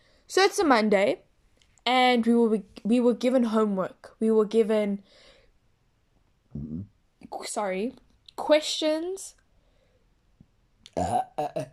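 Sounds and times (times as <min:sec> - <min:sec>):
speech: 0:00.3 - 0:05.3, 0:06.6 - 0:09.4, 0:11.0 - 0:11.7
person belching after a meal of lunch and tea: 0:06.6 - 0:06.9, 0:10.9 - 0:11.7.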